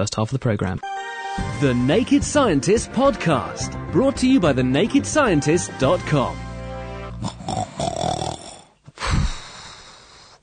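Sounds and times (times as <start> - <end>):
speech: 0.0 - 6.5
person snoring loudly: 7.0 - 10.4.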